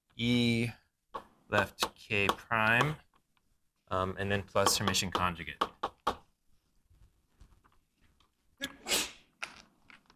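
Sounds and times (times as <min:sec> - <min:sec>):
speech: 0:00.2 - 0:00.8, 0:01.5 - 0:03.0, 0:03.9 - 0:05.7
person sneezing: 0:08.6 - 0:09.3.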